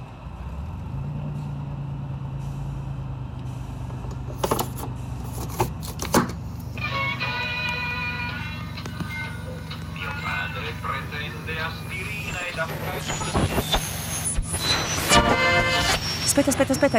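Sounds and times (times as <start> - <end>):
car engine drone: 0.0 - 16.9
road rumble: 0.0 - 16.9
traffic noise: 0.0 - 16.9
sharp clunks and rattles: 3.8 - 6.6
speech: 16.4 - 16.9.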